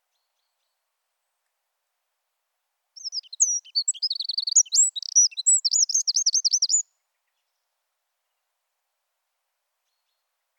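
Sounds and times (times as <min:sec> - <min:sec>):
Eurasian wren Troglodytes troglodytes singing: 0:03.0 - 0:06.8.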